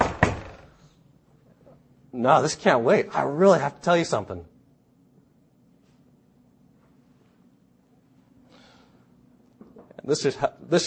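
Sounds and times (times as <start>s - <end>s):
hollow knocking on a door: 0.0s - 0.7s
speech: 2.2s - 4.5s, 10.1s - 10.8s.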